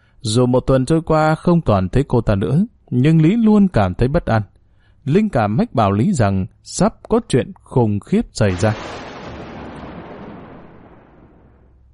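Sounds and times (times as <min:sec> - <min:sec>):
speech: 0:00.2 - 0:09.1
heavy rain as a storm breaks: 0:08.5 - 0:11.9
thunder rumbling as a storm breaks: 0:08.5 - 0:11.9.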